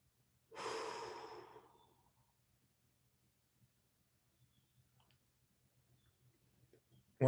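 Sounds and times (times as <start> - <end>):
deep inhale through the nose: 0.6 - 1.9.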